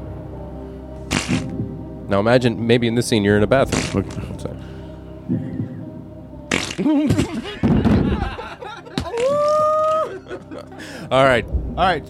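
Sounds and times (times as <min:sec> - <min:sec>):
comical fart sound effects: 0:01.1 - 0:01.6, 0:06.5 - 0:06.9
speech: 0:02.1 - 0:04.7, 0:06.8 - 0:07.5, 0:11.1 - 0:12.0
laughter: 0:06.8 - 0:11.2.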